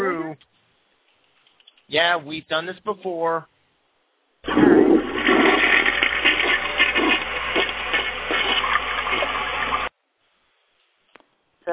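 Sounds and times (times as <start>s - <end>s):
speech: 1.9s - 3.5s
toilet flushing: 4.4s - 9.9s.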